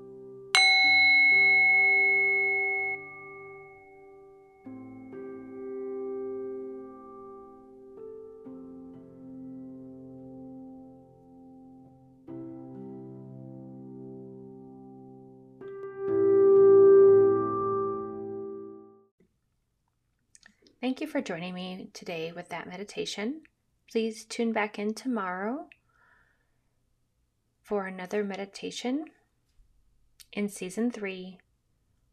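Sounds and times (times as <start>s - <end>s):
meditation bell ringing: 0.6s - 5.0s
resonant tones: 0.6s - 5.7s, 15.6s - 19.0s
speech: 20.9s - 25.8s, 27.7s - 29.2s, 30.4s - 31.4s.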